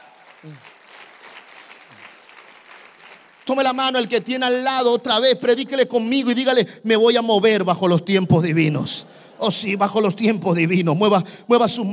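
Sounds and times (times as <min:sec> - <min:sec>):
audience applauding: 0:00.0 - 0:04.1
speech: 0:00.4 - 0:00.7, 0:03.5 - 0:11.9.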